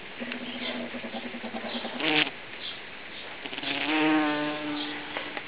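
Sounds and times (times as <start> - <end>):
Bombus bumblebees buzzing while mating: 0.2 - 2.4, 3.4 - 5.4.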